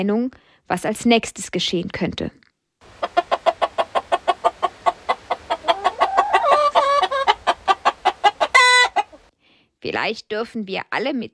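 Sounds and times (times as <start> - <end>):
speech: 0.0 - 3.1, 9.8 - 11.3
flock of hens clucking: 2.8 - 9.3
rooster harsh crow-like cry: 3.2 - 9.2.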